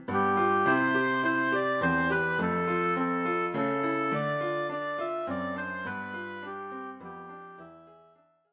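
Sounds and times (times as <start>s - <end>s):
oboe playing a Christmas carol: 0.1s - 8.2s.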